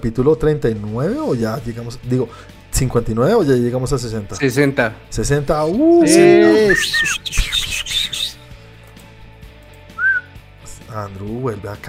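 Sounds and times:
speech: 0.0 - 7.6, 11.0 - 11.8
person whistling: 6.2 - 8.4, 10.0 - 10.3.

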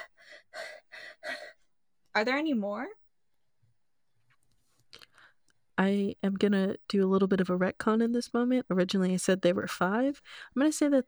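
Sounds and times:
person panting like an animal: 0.0 - 1.6
speech: 2.2 - 3.0, 5.8 - 11.0.

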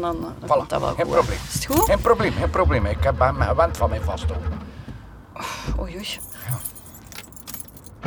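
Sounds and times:
speech: 0.0 - 4.7, 5.4 - 6.7
car keys jangling: 1.7 - 2.2, 6.0 - 7.9.

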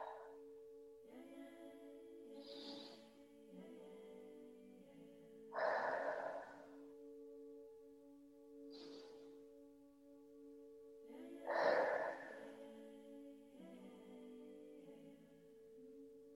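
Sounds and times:
sustained musical drone: 0.0 - 16.3
breathing in through nose and out through mouth: 2.3 - 3.1, 5.6 - 6.9, 11.4 - 12.6.

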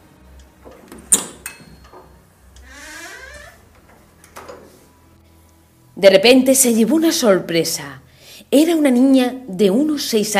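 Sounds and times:
door creaking open: 0.6 - 4.7
speech: 6.0 - 10.3.

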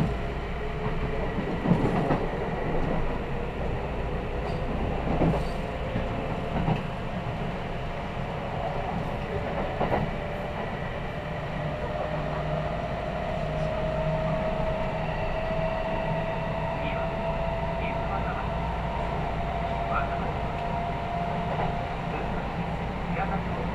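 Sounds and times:
steady low rumble inside an express train cabin: 0.0 - 23.7.

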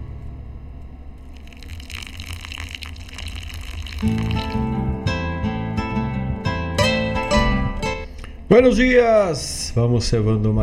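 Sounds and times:
water gushing: 1.3 - 4.8
speech: 4.0 - 4.5, 8.5 - 10.6
rhythmic music with bright plucked notes and a bass line: 4.0 - 8.3.

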